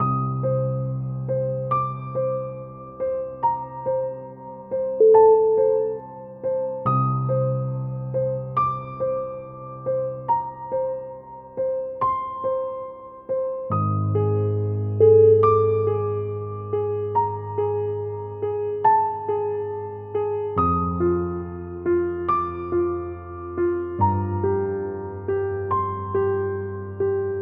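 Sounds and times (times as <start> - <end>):
suspense piano: 0.0 - 27.4.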